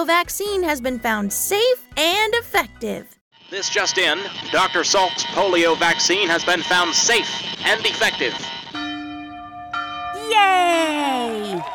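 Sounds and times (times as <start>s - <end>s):
speech: 0.0s - 8.6s, 10.4s - 11.7s
church bells ringing in celebration: 3.5s - 11.7s.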